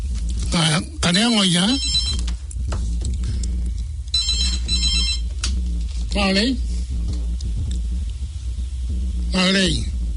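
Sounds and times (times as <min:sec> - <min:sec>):
steady low rumble: 0:00.0 - 0:10.1
speech: 0:00.8 - 0:02.0, 0:06.2 - 0:06.7, 0:09.3 - 0:09.9
telephone ringing in trilling bursts: 0:01.7 - 0:02.2, 0:04.1 - 0:05.3.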